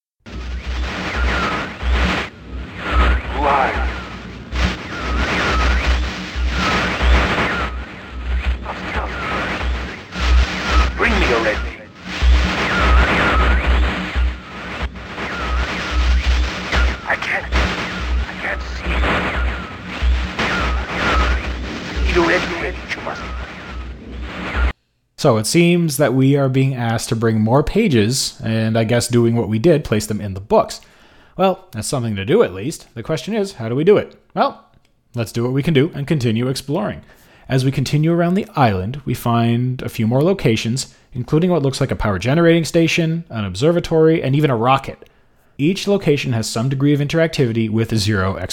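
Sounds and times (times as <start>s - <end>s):
low throbbing rumble: 0.3s - 24.7s
thick harsh static: 0.3s - 24.8s
distorted garbled voice message: 3.2s - 4.1s, 8.6s - 9.5s, 10.8s - 12.0s, 16.8s - 19.5s, 22.0s - 23.6s
speech: 25.2s - 48.5s.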